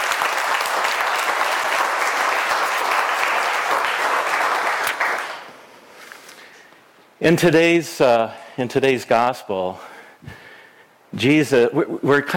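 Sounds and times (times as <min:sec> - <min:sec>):
congregation applauding: 0:00.0 - 0:05.5
speech: 0:07.2 - 0:10.4, 0:11.1 - 0:12.3.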